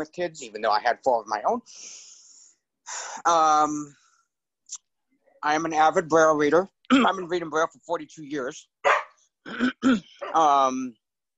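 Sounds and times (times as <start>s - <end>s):
speech: 0.0s - 2.1s, 2.9s - 4.0s, 5.4s - 11.0s
2-year-old miniature goldendoodle barking: 8.8s - 9.2s, 10.2s - 10.4s.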